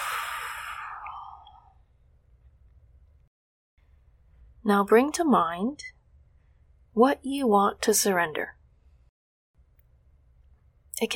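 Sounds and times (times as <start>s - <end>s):
deep breathy exhale during guided relaxation: 0.0s - 1.8s
speech: 4.6s - 6.0s, 7.0s - 8.6s.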